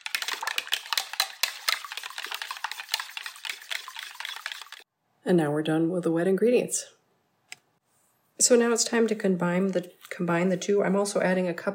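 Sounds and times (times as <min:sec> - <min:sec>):
whisk beating egg and milk in a bowl: 0:00.0 - 0:04.8
speech: 0:05.2 - 0:07.0, 0:08.4 - 0:11.7.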